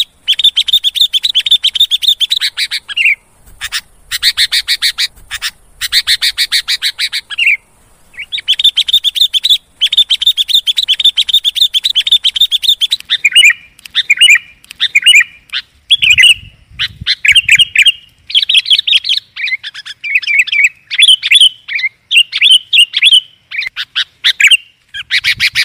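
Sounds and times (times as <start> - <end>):
lovebird chatter: 0.0 - 25.6.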